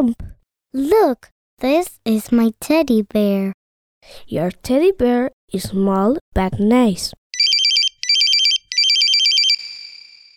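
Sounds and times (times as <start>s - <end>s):
speech: 0.0s - 7.2s
mobile phone ringtone with bright warbling electronic bursts: 7.4s - 10.3s.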